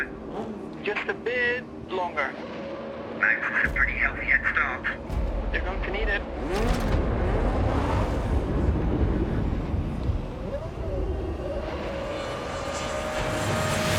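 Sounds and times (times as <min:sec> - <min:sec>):
Formula One car V8 engine accelerating away: 0:00.0 - 0:13.9
speech: 0:00.8 - 0:02.6, 0:03.2 - 0:07.0.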